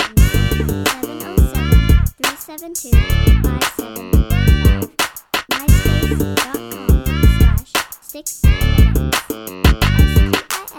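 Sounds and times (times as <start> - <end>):
horn: 0.2 - 2.2, 3.0 - 4.9, 5.7 - 7.6, 8.4 - 10.4.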